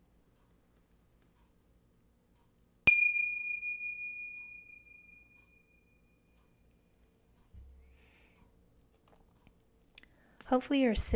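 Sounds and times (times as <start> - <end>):
bright meditation bell strike ringing: 2.9 - 5.8
speech: 10.5 - 11.1.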